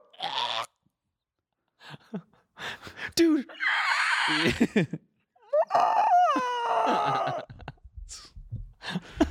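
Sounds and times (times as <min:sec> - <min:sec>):
speech: 0:02.1 - 0:02.3, 0:03.2 - 0:03.6, 0:04.3 - 0:05.1, 0:05.7 - 0:07.4
person squawking imitating a screeching bird: 0:03.6 - 0:04.4.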